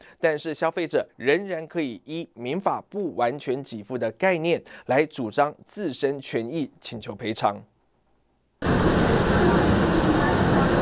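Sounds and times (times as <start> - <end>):
speech: 0.2 - 7.7
train pulling into a station: 8.6 - 10.8.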